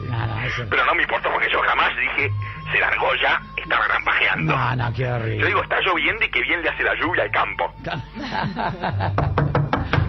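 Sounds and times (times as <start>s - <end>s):
speech: 0.6s - 9.5s
laughter: 7.8s - 9.4s
firm knocking on a door: 9.1s - 10.0s.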